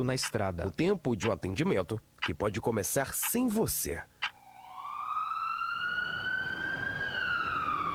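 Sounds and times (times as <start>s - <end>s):
speech: 0.0s - 4.1s
emergency vehicle siren wailing: 4.4s - 7.9s.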